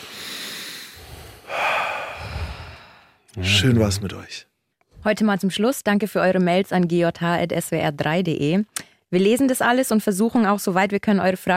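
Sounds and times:
deep breathing: 0.0s - 3.4s
speech: 3.4s - 11.5s.

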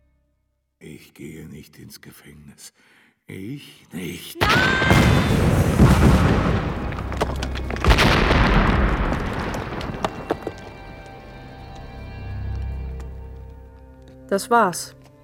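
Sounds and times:
speech: 1.0s - 6.8s, 14.3s - 15.0s
explosion blowing up a sugar factory and tunnel in a pine forest: 4.4s - 10.9s
sharp cracks: 4.4s - 13.1s.

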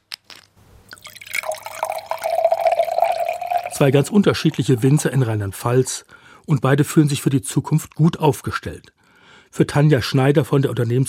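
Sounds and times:
wine pouring into a bottle in a small bottling plant in Rhineland-Palatinate Germany: 0.9s - 6.0s
drips: 0.9s - 6.5s
speech: 3.8s - 11.0s.

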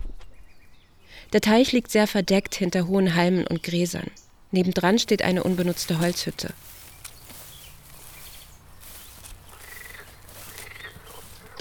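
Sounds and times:
speech: 1.3s - 6.8s
chorus of frogs croaking at a pond while mating: 4.7s - 11.5s.

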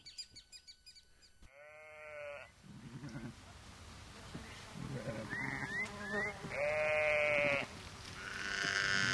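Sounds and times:
low outdoor rustling: 0.3s - 9.1s
sheep bleating as they leave their pasture in autumn: 1.5s - 3.4s, 4.9s - 9.1s.

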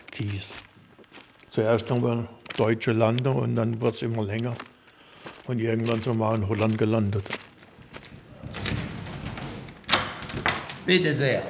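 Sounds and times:
speech: 0.2s - 0.7s, 1.6s - 4.7s, 5.5s - 7.4s, 10.9s - 11.4s
rustling and scraping noises: 5.8s - 10.8s
door opening into a former classroom of an old primary school: 8.0s - 11.0s.

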